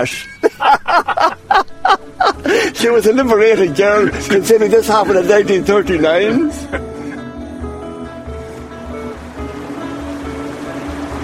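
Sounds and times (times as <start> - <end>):
speech: 0.0 - 7.0
laughter: 0.3 - 5.6, 6.2 - 7.4
rushing flowing river water with low churning rumble: 0.6 - 11.2.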